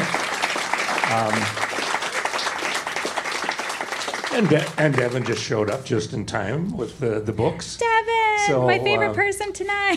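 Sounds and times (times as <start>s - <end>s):
room full of people applauding: 0.0s - 6.0s
speech: 1.1s - 1.6s, 4.4s - 9.9s.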